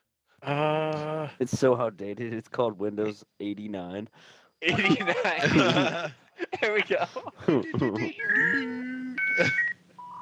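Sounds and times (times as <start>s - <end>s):
speech: 1.3s - 8.8s, 9.4s - 9.7s
laughter: 4.6s - 9.7s
dial-up modem connecting tones: 8.1s - 10.1s.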